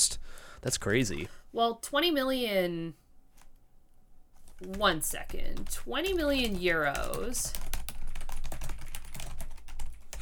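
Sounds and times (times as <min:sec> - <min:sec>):
speech: 0:00.0 - 0:03.0, 0:04.6 - 0:07.7
two people typing on computer keyboards: 0:04.4 - 0:10.2.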